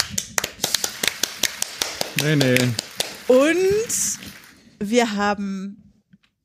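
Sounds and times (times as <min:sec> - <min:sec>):
light scattered clapping from one or two people: 0:00.0 - 0:04.6
speech: 0:02.2 - 0:05.8.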